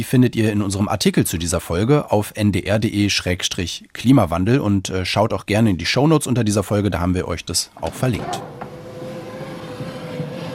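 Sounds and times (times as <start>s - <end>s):
speech: 0.0s - 8.7s
automatic door ramp motor whirring on an autonomous shuttle vehicle: 7.8s - 10.5s.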